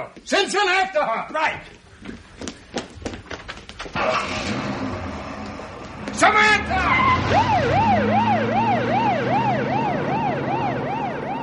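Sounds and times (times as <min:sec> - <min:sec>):
speech: 0:00.0 - 0:01.8, 0:04.0 - 0:04.6, 0:06.2 - 0:08.2
police squad car siren wailing: 0:06.5 - 0:11.4.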